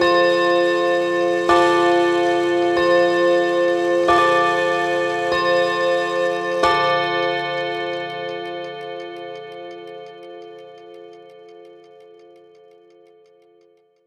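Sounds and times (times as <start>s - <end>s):
big clock alarm: 0.0s - 12.5s.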